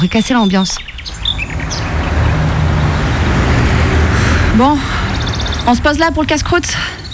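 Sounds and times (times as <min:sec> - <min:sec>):
speech: 0:00.0 - 0:01.8, 0:04.6 - 0:04.9, 0:05.6 - 0:07.0
bird chirps: 0:00.0 - 0:03.4, 0:04.9 - 0:07.1
car passing on a road: 0:00.8 - 0:07.1.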